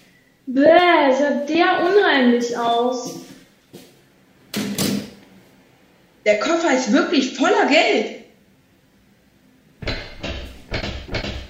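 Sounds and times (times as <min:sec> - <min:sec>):
speech: 0:00.5 - 0:03.3, 0:06.3 - 0:08.2
locked door rattled hard in its frame: 0:09.8 - 0:11.4.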